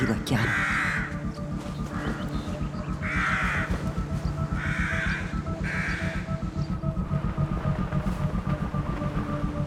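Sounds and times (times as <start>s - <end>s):
speech: 0.0s - 0.7s
crows cawing on the cliffs of Amorgos in Greece: 0.0s - 6.4s
low droning rumble: 0.6s - 9.6s.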